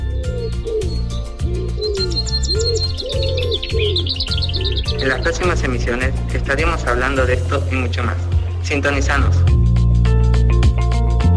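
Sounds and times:
dove-like cooing: 0:00.0 - 0:05.0
city birds chirping and tweeting in Buenos Aires: 0:00.0 - 0:09.3
steady repeating low backing: 0:00.0 - 0:11.3
speech: 0:05.0 - 0:09.6.

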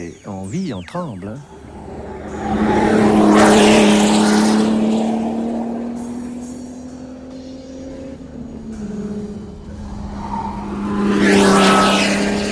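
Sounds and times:
speech: 0:00.0 - 0:01.6
Formula 1 race car accelerating hard out of a corner: 0:01.5 - 0:12.5.

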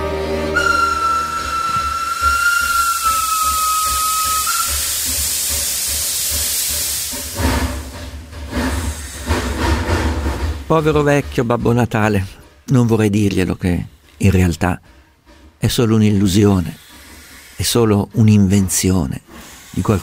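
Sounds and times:
train running: 0:00.0 - 0:20.0
steady high whistle tone: 0:00.1 - 0:05.5
broad steam-like hiss of a train: 0:00.6 - 0:11.6, 0:12.2 - 0:20.0
rough rumbling clatter of a train: 0:00.6 - 0:17.0
speech: 0:10.7 - 0:15.0, 0:15.6 - 0:16.8, 0:17.6 - 0:20.0.

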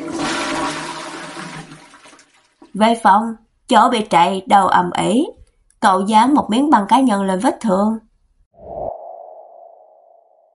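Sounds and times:
rushing tap water flushing ashes down a drain: 0:00.0 - 0:02.8
speech: 0:02.8 - 0:08.1.

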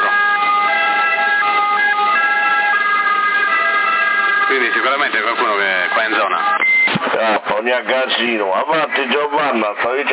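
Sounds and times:
ambulance siren over a narrowband CB radio channel: 0:00.0 - 0:07.0
speech: 0:05.1 - 0:10.1.

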